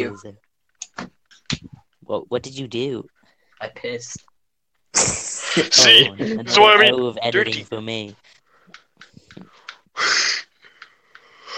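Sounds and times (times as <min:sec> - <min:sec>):
speech: 0:00.0 - 0:04.3, 0:04.9 - 0:08.3, 0:09.4 - 0:10.3
quiet breaths: 0:08.2 - 0:11.5.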